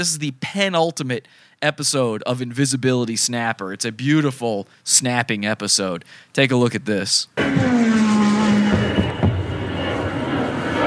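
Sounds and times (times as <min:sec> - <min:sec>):
speech: 0:00.0 - 0:09.0
airplane engine droning as it passes: 0:07.4 - 0:10.8.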